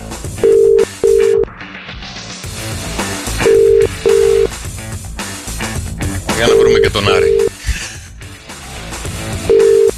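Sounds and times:
phone ringback tone: 0.4 - 1.4, 3.4 - 4.5, 6.5 - 7.5, 9.4 - 9.9
speech: 6.4 - 7.5.

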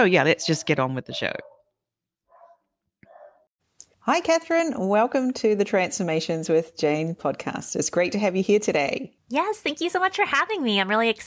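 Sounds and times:
speech: 0.0 - 1.6, 4.0 - 11.2
dog barking: 1.1 - 3.5.

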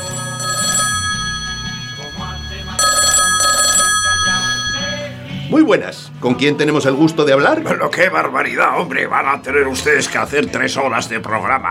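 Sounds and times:
telephone ringing for an incoming call: 0.0 - 5.4
speech: 5.5 - 11.7.

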